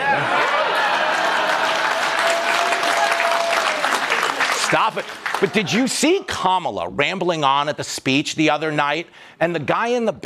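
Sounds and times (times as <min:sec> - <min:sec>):
speech: 0:00.0 - 0:00.4, 0:04.7 - 0:10.2
large crowd applauding: 0:00.0 - 0:06.2.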